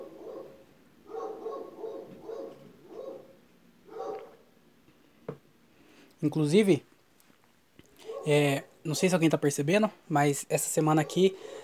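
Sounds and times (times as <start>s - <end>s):
dog barking: 0.0s - 4.5s, 8.0s - 8.4s, 11.0s - 11.6s
speech: 6.2s - 6.9s, 8.2s - 11.6s.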